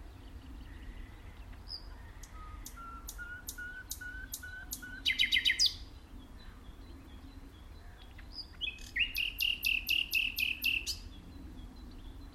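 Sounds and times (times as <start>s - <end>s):
common nightingale song: 0.0s - 12.3s.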